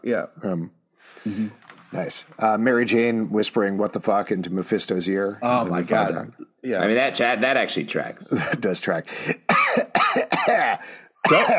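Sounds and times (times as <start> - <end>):
speech: 0.0 - 9.5, 10.5 - 11.5
person coughing into the microphone: 9.3 - 11.5.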